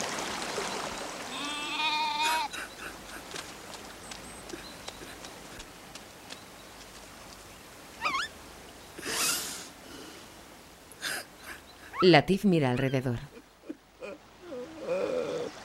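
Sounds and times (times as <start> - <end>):
outdoor rustling: 0.0 - 15.6
goat bleating around a house: 1.3 - 2.5
speech: 12.0 - 13.4.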